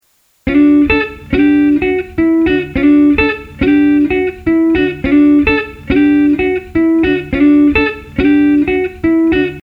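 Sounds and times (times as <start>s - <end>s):
clean electric guitar: 0.4s - 9.6s.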